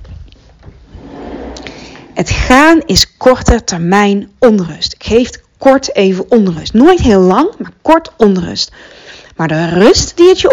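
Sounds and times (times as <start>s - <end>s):
door pushed shut with a scraping sliding rumble: 0.6s - 2.2s
speech: 2.2s - 10.5s.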